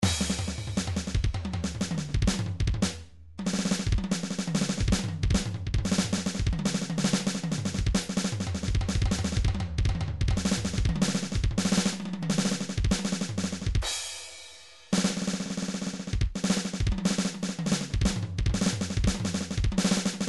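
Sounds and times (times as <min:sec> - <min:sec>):
midi drum solo: 0:00.0 - 0:20.2.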